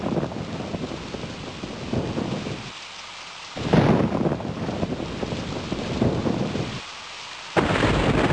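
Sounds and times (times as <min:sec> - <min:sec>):
low thunder rumbling in a thunderstorm: 0:00.0 - 0:02.7, 0:03.6 - 0:06.8, 0:07.6 - 0:08.3
heavy rain of a thunderstorm: 0:00.0 - 0:08.3.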